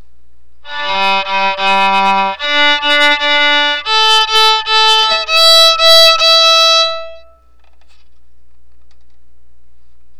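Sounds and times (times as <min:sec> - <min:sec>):
piezo sound: 0:00.7 - 0:07.3.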